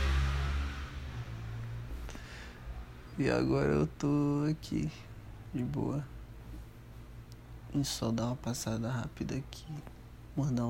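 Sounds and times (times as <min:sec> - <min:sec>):
motorcycle engine roaring past: 0:00.0 - 0:02.0
speech: 0:03.2 - 0:06.2, 0:07.7 - 0:10.6.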